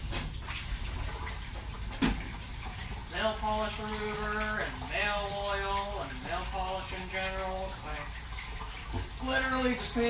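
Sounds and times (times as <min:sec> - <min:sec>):
water running from a tap while washing hands: 0:00.0 - 0:10.0
speech: 0:03.2 - 0:08.2, 0:08.9 - 0:10.0.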